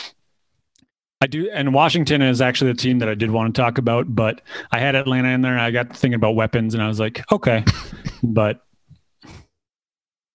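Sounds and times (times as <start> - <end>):
speech: 1.2 - 9.4
short gruff throat clearing by a person turned away from the microphone: 7.6 - 8.3.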